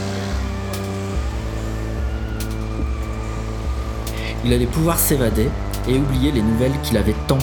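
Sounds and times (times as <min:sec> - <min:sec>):
car engine started by the driver and revving: 0:00.0 - 0:07.4
speech: 0:04.4 - 0:07.4.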